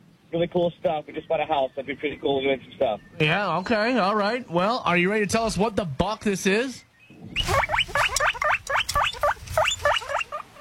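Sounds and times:
speech: 0.3 - 7.6
guinea pig squeaking: 7.3 - 10.5.

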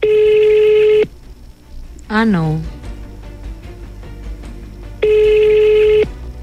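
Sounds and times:
telephone ringing: 0.0 - 1.1, 5.0 - 6.1
faint low hum: 0.0 - 6.4
speech: 2.1 - 2.7.

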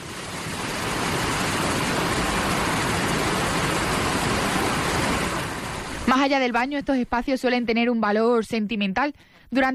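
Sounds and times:
rushing river water: 0.0 - 6.6
speech: 6.1 - 9.7.

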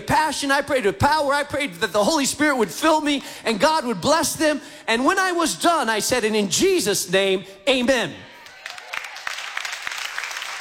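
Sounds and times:
speech: 0.1 - 8.3
audience applauding: 8.4 - 10.5.

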